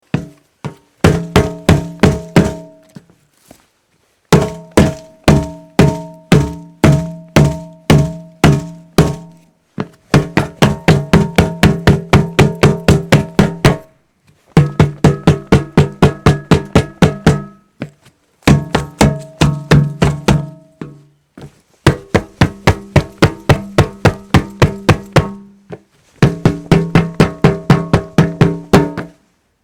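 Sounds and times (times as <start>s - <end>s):
hollow hitting: 0.0s - 3.1s, 4.3s - 13.9s, 14.6s - 29.3s.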